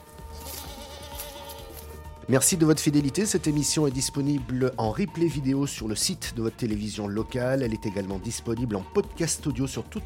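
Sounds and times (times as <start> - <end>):
goats bleating in a barn: 0.3 - 2.0
speech: 2.3 - 10.0.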